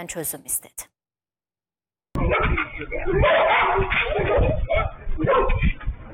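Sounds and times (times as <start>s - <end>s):
speech: 0.0s - 0.9s, 2.3s - 6.1s
pack of stray dogs barking and yelping: 2.2s - 6.1s.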